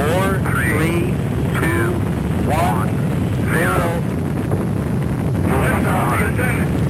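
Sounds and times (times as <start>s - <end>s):
faint crackly radio voice: 0.0s - 4.0s, 5.5s - 6.8s
space shuttle main engines roaring: 0.0s - 6.8s.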